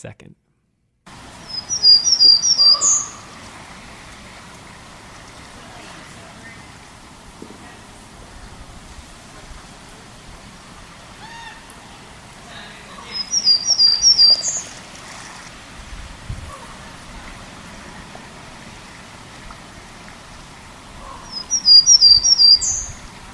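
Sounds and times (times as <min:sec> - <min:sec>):
speech: 0:00.0 - 0:00.4
Townsend's Warbler singing buzzy rising phrases: 0:01.1 - 0:04.1, 0:04.9 - 0:08.7, 0:11.9 - 0:15.4, 0:20.3 - 0:23.2
steady hiss: 0:01.1 - 0:23.3.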